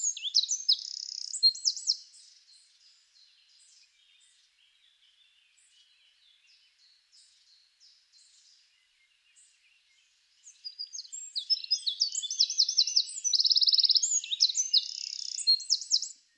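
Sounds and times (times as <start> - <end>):
Eurasian wren song, Troglodytes troglodytes: 0.0 - 2.3, 10.6 - 16.2.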